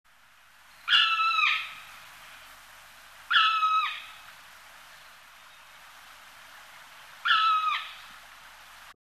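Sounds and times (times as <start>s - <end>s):
black woodpecker calling: 0.7s - 2.4s, 3.3s - 4.2s, 7.2s - 8.1s.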